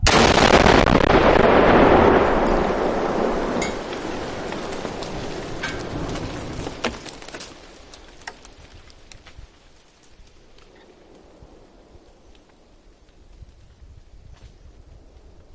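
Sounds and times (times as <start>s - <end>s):
very loud explosion: 0.0s - 6.1s.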